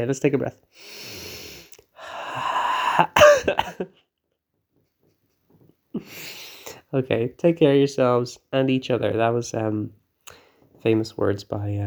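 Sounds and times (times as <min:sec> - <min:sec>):
speech: 0:00.0 - 0:01.3, 0:03.0 - 0:04.0, 0:06.9 - 0:10.0, 0:10.8 - 0:11.8
harsh wheezy coughing fit: 0:02.8 - 0:04.0.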